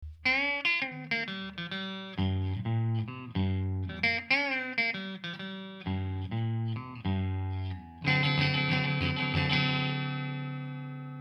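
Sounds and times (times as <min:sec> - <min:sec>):
electric guitar played at the bridge and neck: 0:00.1 - 0:11.2.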